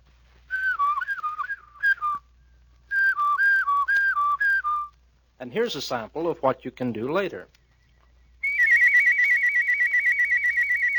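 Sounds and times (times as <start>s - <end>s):
person whistling a clear, steady melody: 0.5s - 2.3s, 2.9s - 4.9s, 8.4s - 10.9s
speech: 5.4s - 7.6s.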